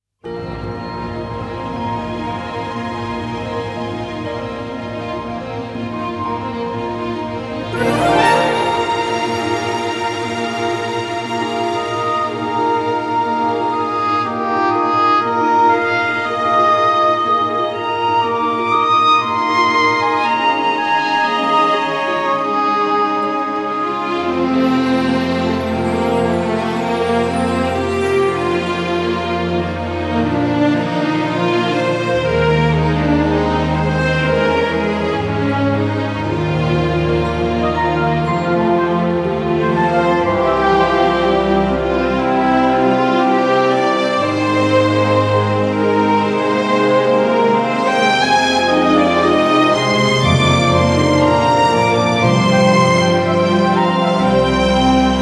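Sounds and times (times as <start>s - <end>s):
woodwind instruments: 0.3s - 55.2s
brass instruments: 7.7s - 15.7s, 22.5s - 55.2s.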